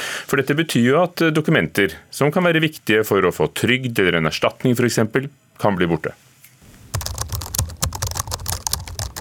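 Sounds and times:
speech: 0.3s - 6.2s
fingers typing on a computer keyboard in an apartment in Oslo: 6.9s - 9.2s.

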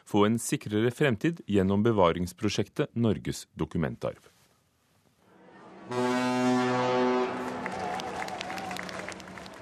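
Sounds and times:
speech: 0.1s - 4.3s, 5.9s - 6.1s
Norwegian coastal express ship horn blaring: 5.3s - 9.6s
crowd cheering and clapping: 7.0s - 9.6s.

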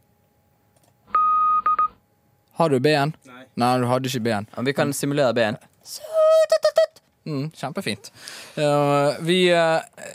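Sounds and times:
morse code beeps in a clean electronic tone: 1.2s - 2.0s
speech: 2.6s - 6.1s, 7.2s - 10.1s.

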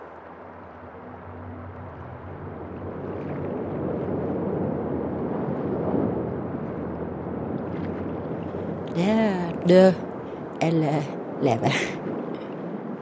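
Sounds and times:
homemade motorboat engine droning heading out to sea: 0.0s - 8.9s
rushing water: 0.0s - 13.0s
wind: 0.0s - 13.0s
speech: 9.0s - 12.0s.

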